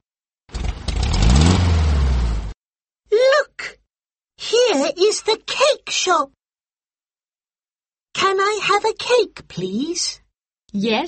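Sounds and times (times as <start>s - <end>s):
car engine revving: 0.5s - 2.6s
speech: 4.8s - 6.4s, 8.2s - 11.0s.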